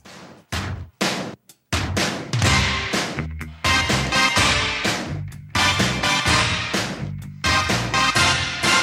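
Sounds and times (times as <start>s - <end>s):
1980s pop film-soundtrack arrangement: 1.8s - 8.8s
orchestra-hit stabs sampled from classical music: 2.4s - 8.8s.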